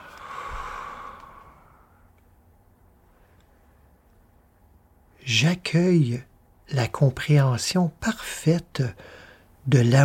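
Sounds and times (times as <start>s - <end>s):
long deep breath drawn in: 0.0s - 2.0s
speech: 5.3s - 10.0s.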